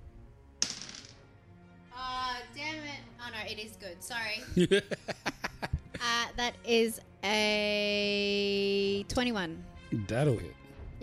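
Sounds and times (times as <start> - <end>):
die landing on a tabletop and rattling: 0.6 - 1.2
speech: 3.5 - 5.2, 6.4 - 11.0
laughter: 4.4 - 6.0.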